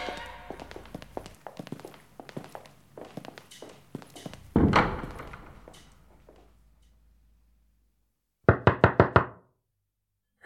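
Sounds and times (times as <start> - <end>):
heavy thud: 4.5 - 5.7
knocking on a wooden apartment door: 8.5 - 9.5.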